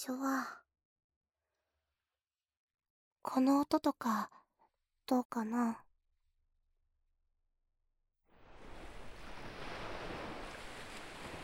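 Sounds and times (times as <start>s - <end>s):
speech: 0.0s - 0.6s, 3.2s - 4.4s, 5.1s - 5.8s
ocean waves washing onto a sandy beach and receding: 8.3s - 11.4s.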